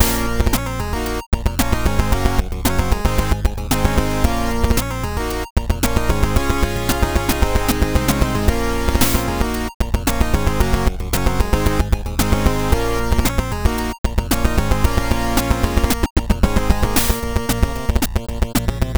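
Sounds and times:
retro boss battle game music: 0.0s - 18.8s.

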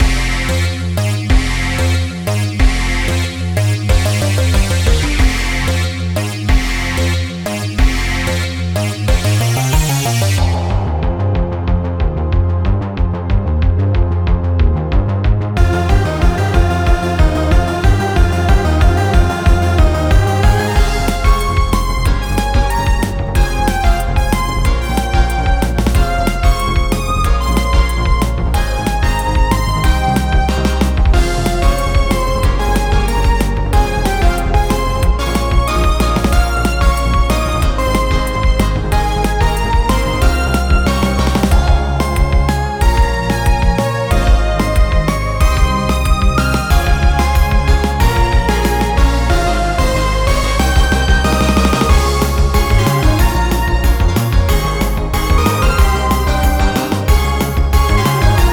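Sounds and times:
fantasy boss battle music: 0.0s - 14.6s, 15.2s - 58.5s.

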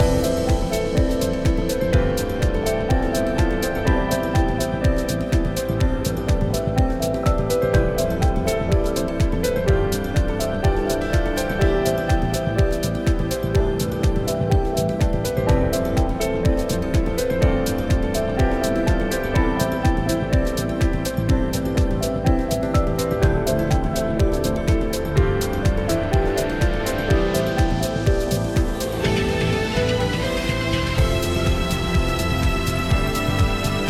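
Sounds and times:
loopable inspiring emotional electronic melody: 0.0s - 33.8s.

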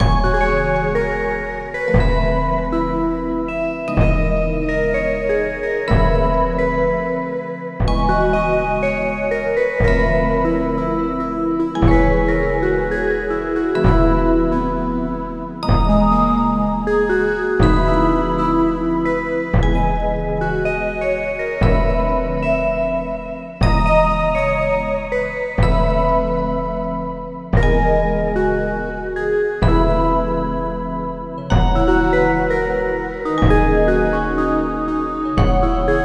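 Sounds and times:
jazz synth music: 0.0s - 36.0s.

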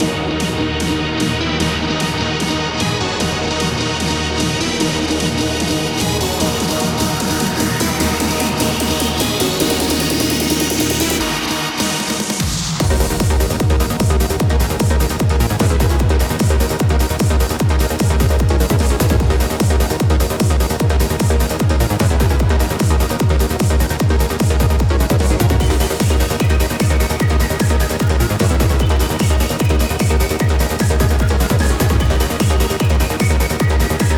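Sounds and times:
loopable 150 bpm trance music for a boss battle: 0.0s - 34.1s.

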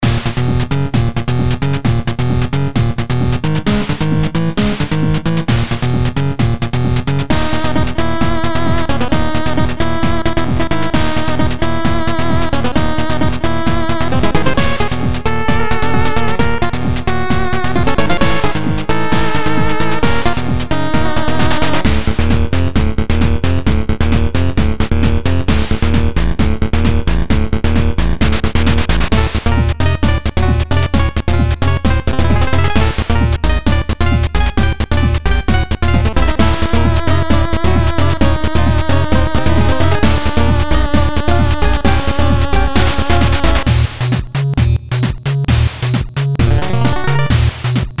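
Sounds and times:
8-bit JRPG boss battle music: 0.0s - 47.9s.

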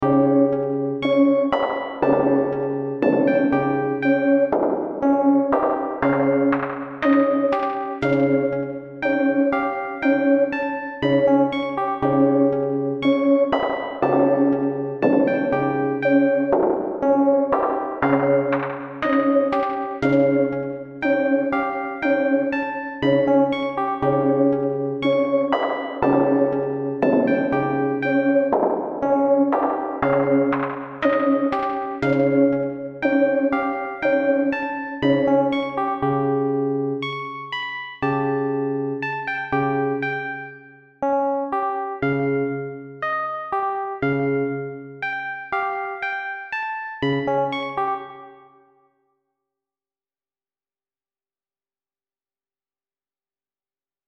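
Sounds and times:
creepy hall music: 0.0s - 48.7s.

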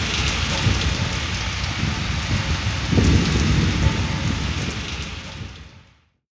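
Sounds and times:
rain: 0.0s - 6.2s.

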